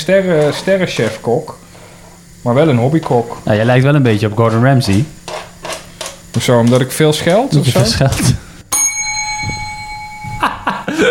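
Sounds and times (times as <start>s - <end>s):
speech: 0.0s - 1.6s, 2.4s - 5.2s, 6.3s - 8.4s
small kitchen bell ringing: 8.7s - 10.7s
laughter: 10.4s - 11.0s.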